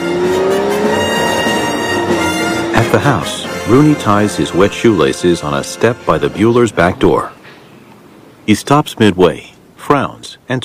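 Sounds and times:
car engine roaring with rising whine while speeding: 0.0 - 8.5
rushing road noise: 0.0 - 10.6
speech: 2.9 - 7.4, 8.5 - 10.6.

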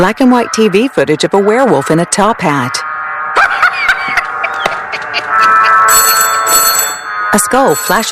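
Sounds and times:
speech: 0.0 - 3.5, 7.3 - 8.0
laughter: 3.4 - 5.9
telephone ringing with a trilling tone: 4.0 - 8.0.

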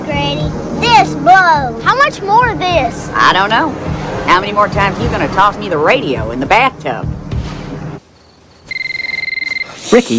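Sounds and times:
speech: 1.0 - 7.2, 9.9 - 10.1
telephone behind a sofa cushion ringing with a loud electronic trill: 8.2 - 9.8.

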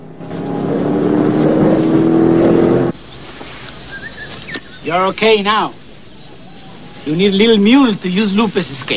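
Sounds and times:
truck engine roaring as the truck races off: 0.0 - 3.2
speech: 4.9 - 5.8, 7.1 - 8.9.

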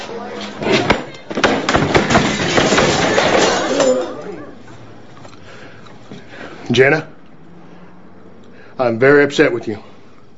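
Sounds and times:
chair hurled across a room crashing with thuds and bangs: 0.6 - 4.2
speech: 6.8 - 7.1, 8.8 - 9.9.

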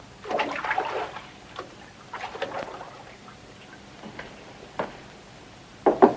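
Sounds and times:
soft splashy, rustling bathroom noises: 0.0 - 4.7
sharp raps on a bathroom door: 5.8 - 6.1.

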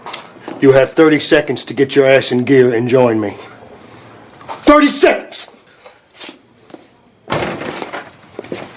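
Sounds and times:
speech: 0.6 - 3.5, 4.7 - 5.5
door slamming shut: 7.2 - 8.1
footstep-like thuds: 7.3 - 8.7.

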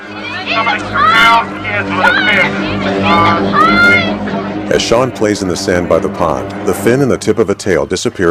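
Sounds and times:
panicked crowd shouting and crying out at a beach: 0.0 - 6.7
speech: 0.6 - 8.2.

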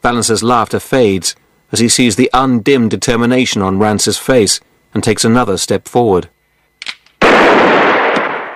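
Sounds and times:
speech: 0.0 - 6.4
loud gunshot fired at a man's right arm: 7.2 - 8.5.

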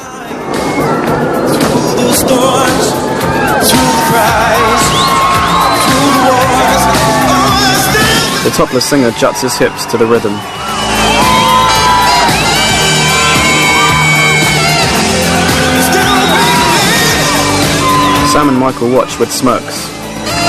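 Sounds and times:
high squeals and yells of teenagers: 0.0 - 18.6
crowd of teenagers at a fairground concert cheering: 0.0 - 20.4
speech: 8.4 - 10.7, 18.3 - 20.4.

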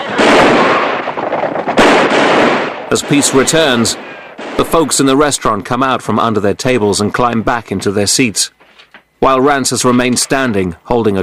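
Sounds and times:
pistol gunfire: 0.1 - 4.6
speech: 2.9 - 8.6, 9.2 - 11.2.

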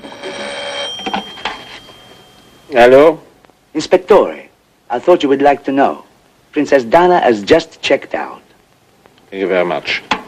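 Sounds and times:
telephone ringing in a bedroom: 0.0 - 2.9
faint steady high tone: 0.0 - 3.3
speech: 2.7 - 8.4, 9.3 - 10.2.

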